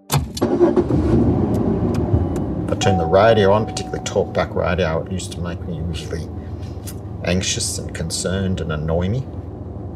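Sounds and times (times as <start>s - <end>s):
car engine running: 1.2s - 9.9s
speech: 2.8s - 6.4s, 7.2s - 9.4s.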